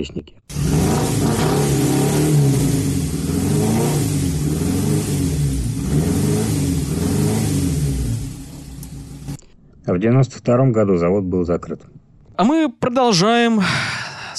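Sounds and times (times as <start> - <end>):
speech: 0.0 - 1.8, 9.9 - 14.3
stock engine of 1974 Autobianchi small car revving: 0.5 - 9.4.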